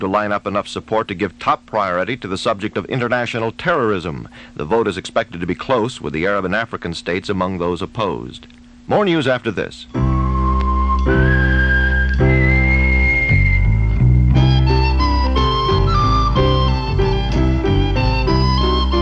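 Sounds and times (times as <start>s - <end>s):
speech: 0.0s - 10.1s
full instrumental backing music: 9.9s - 18.9s
person whistling a bright sustained melody: 10.1s - 18.9s.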